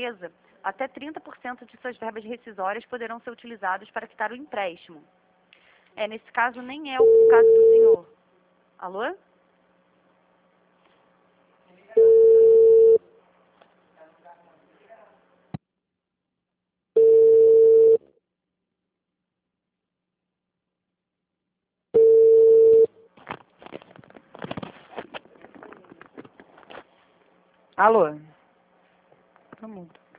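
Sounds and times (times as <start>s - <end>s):
speech: 0.0s - 5.2s, 6.0s - 8.2s, 8.8s - 9.3s, 27.8s - 28.3s, 29.6s - 30.1s
ringback tone on a telephone call: 12.0s - 13.0s, 17.0s - 18.0s, 22.0s - 22.9s
faint irregular crackling noise: 23.1s - 27.6s.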